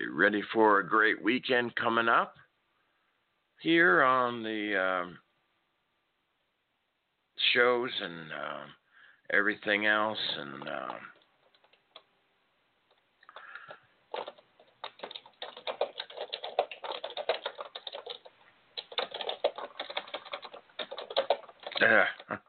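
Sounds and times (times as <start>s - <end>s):
speech: 0.2s - 2.4s, 3.6s - 5.2s, 7.4s - 11.1s, 21.8s - 22.4s
typing on a computer keyboard: 10.2s - 12.1s, 13.3s - 22.3s.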